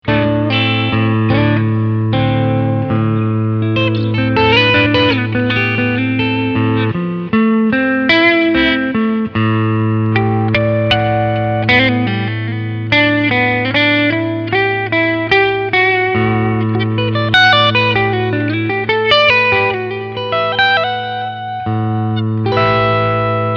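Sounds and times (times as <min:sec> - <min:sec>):
clean guitar picking on both humbuckers: 0:00.0 - 0:23.5.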